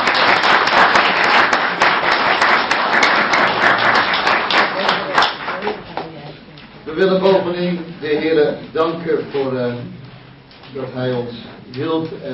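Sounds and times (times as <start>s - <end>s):
crowd applauding organists: 0.0s - 5.9s
speech: 7.0s - 10.0s, 10.7s - 12.3s.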